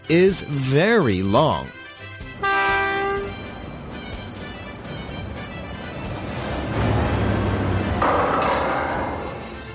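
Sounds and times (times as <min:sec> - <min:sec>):
speech: 0:00.1 - 0:01.8
train horn blaring: 0:02.2 - 0:06.7
rail cars rumbling and clattering past: 0:02.5 - 0:09.7.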